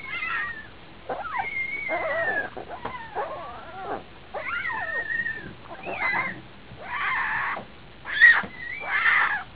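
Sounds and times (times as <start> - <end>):
hungry jaguar cubs calling: 0.0 - 9.5.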